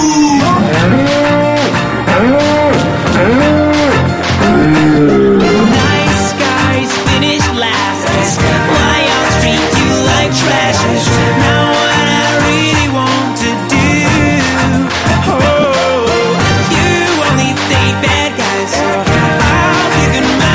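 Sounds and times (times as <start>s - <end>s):
loud busy music with a steady beat: 0.0s - 20.5s
cow mooing: 2.1s - 6.2s.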